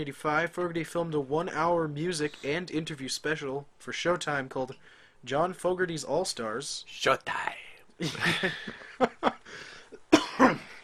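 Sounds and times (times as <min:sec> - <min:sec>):
speech: 0:00.0 - 0:09.7
laughter: 0:08.0 - 0:09.6
person coughing: 0:10.0 - 0:10.8.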